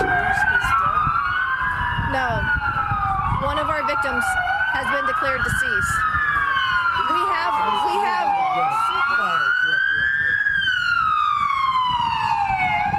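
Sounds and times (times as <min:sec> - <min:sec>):
emergency vehicle siren wailing in Kansas City: 0:00.0 - 0:12.9.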